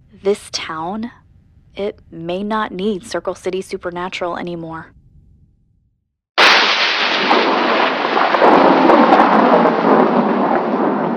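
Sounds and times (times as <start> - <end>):
speech: 0.2 - 1.2, 1.8 - 5.0
rolling rumble of thunder: 6.4 - 11.1
steady rain hiss: 6.4 - 11.1.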